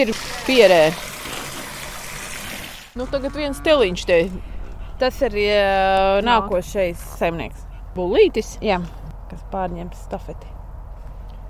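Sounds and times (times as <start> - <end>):
speech: 0.0 - 1.1, 3.0 - 10.5
water pouring from a tank into a trough: 0.0 - 3.0.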